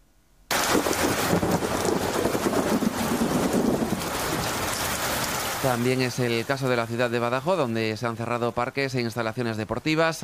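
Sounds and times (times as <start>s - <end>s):
deep rolling thunder during a storm in Mérida: 0.5s - 5.8s
heavy rain during a storm in Mérida: 0.5s - 8.5s
speech: 5.7s - 10.2s.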